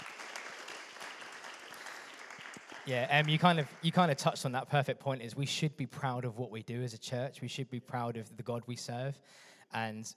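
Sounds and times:
room full of people clapping steadily: 0.0s - 4.2s
speech: 2.9s - 10.1s.

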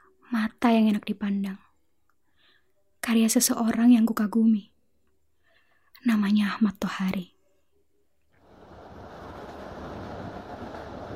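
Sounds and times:
speech: 0.6s - 1.7s, 3.1s - 4.7s, 6.0s - 7.3s
passenger train rolling on rails: 8.4s - 11.1s.

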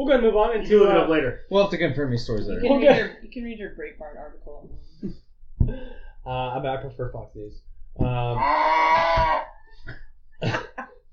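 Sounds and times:
speech: 0.0s - 10.7s
cow mooing: 8.3s - 9.6s.

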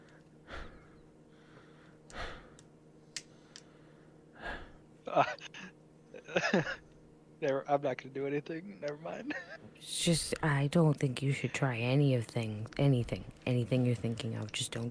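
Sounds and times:
heavy ragged breathing: 0.0s - 2.6s, 3.2s - 4.8s
speech: 5.2s - 5.4s, 6.5s - 6.8s, 7.4s - 14.8s.

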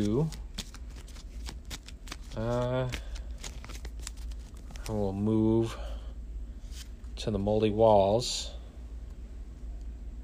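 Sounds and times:
speech: 0.0s - 0.4s, 2.4s - 3.1s, 4.9s - 5.8s, 7.2s - 8.6s
deck of cards being shuffled during a card game: 0.0s - 5.2s.

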